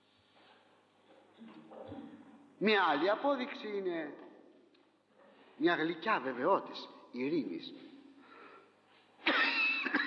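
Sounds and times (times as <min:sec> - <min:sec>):
speech: 0:01.4 - 0:04.2, 0:05.6 - 0:07.9
harsh raspy cough: 0:09.2 - 0:10.0.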